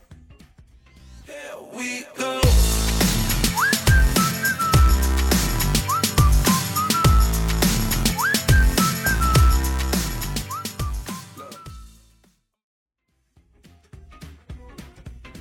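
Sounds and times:
speech: 1.3 - 2.5
loud punchy hip-hop pop beat with heavy bass: 2.4 - 11.9
whistled hook of a hip-hop pop song: 3.2 - 12.1.

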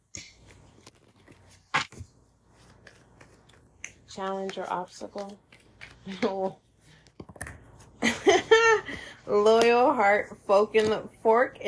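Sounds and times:
deck of tarot cards being shuffled: 0.2 - 7.9
speech: 4.2 - 5.5, 6.1 - 6.6, 8.9 - 11.6.

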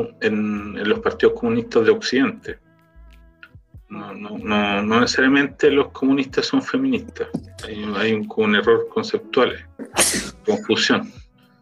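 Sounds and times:
speech: 0.0 - 2.6, 3.9 - 11.2
sneeze: 9.8 - 10.6.

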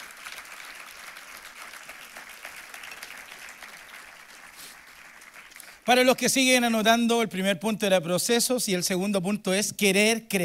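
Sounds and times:
crowd applauding: 0.0 - 6.0
speech: 5.9 - 10.4.

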